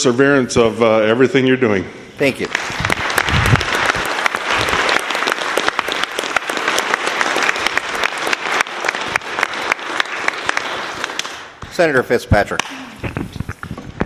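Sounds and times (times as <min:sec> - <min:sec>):
speech: 0:00.0 - 0:02.9, 0:11.8 - 0:13.4
sizable group applauding the Senate pages: 0:02.2 - 0:13.0.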